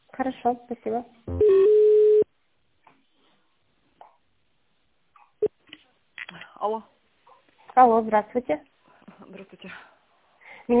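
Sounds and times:
speech: 0.2 - 1.7, 7.8 - 8.7
telephone ringback tone on a call being transferred: 1.3 - 2.2.

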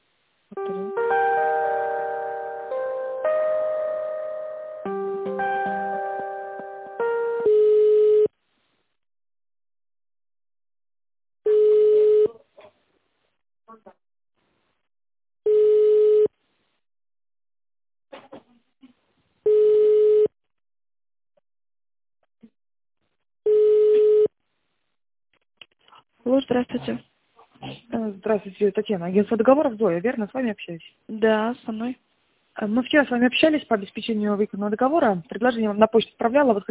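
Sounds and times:
telephone line electronic melody of stepped tones during a call transfer: 0.6 - 8.0
telephone ringback tone during a call transfer: 7.0 - 8.3, 11.5 - 12.3, 15.5 - 16.3, 19.5 - 20.3, 23.5 - 24.3
speech: 26.4 - 27.1, 28.2 - 36.7.

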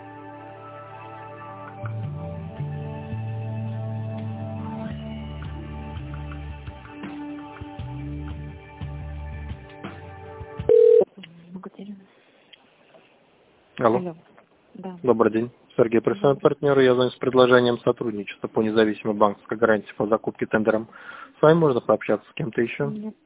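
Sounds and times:
telephone line tones during a call transfer: 10.7 - 11.1
speech: 13.8 - 14.2, 15.0 - 23.2.

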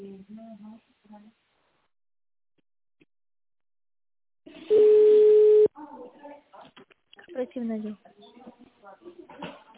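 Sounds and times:
telephone ringing tone while waiting for an operator: 4.7 - 5.7.

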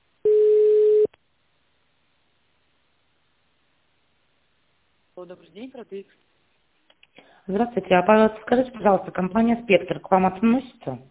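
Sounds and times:
telephone beep while a call is transferred: 0.3 - 1.1
speech: 5.2 - 6.3, 7.2 - 11.0.

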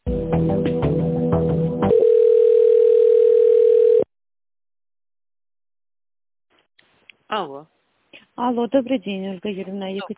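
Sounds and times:
speech: 0.4 - 0.8, 8.5 - 10.1
pulsing layered telephone line tones as a call is transferred: 1.9 - 4.1.

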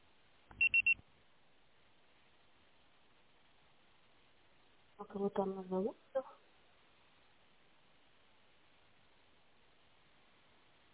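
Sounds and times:
voicemail high-pitched electronic beeps: 0.5 - 1.0
speech: 5.0 - 6.4.

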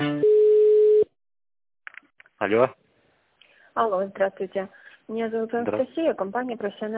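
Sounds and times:
telephone beeps while a call is being transferred: 0.2 - 1.1
speech: 2.5 - 2.8, 3.8 - 6.9.

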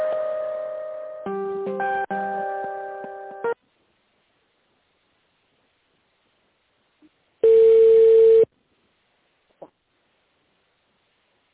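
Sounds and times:
telephone tone while an office call is transferred: 7.4 - 8.5.

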